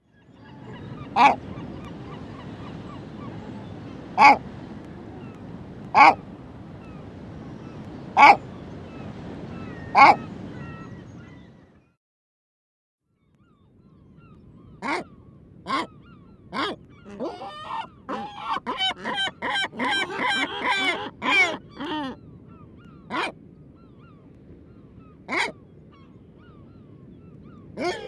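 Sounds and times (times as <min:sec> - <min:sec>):
great black-backed gull calling: 0:00.2 - 0:04.5, 0:05.2 - 0:06.2, 0:07.6 - 0:08.6, 0:09.5 - 0:11.5, 0:14.7 - 0:23.4, 0:25.0 - 0:26.8, 0:27.4 - 0:28.0.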